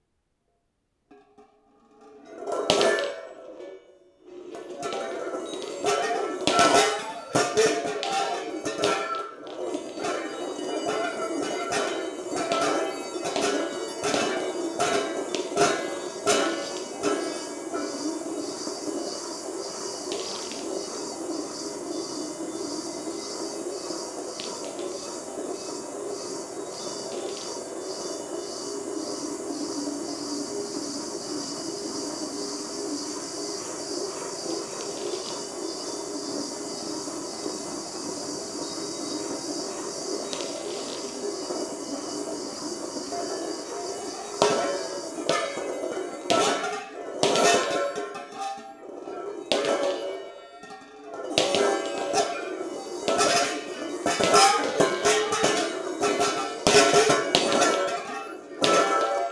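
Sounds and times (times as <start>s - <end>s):
balls circling in a metal bowl: 4.2s - 59.2s.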